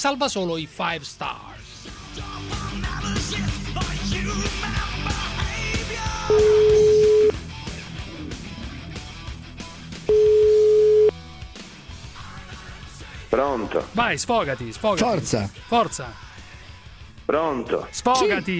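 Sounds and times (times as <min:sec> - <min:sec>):
speech: 0:00.0 - 0:01.4, 0:13.4 - 0:16.3, 0:17.3 - 0:18.5
music: 0:00.0 - 0:18.5
telephone ringback tone of a call being placed: 0:06.3 - 0:07.4, 0:10.1 - 0:11.1.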